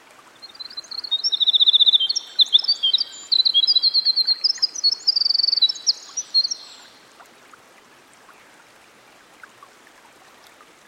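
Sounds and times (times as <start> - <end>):
winter wren singing by a stream: 0.5 - 6.9.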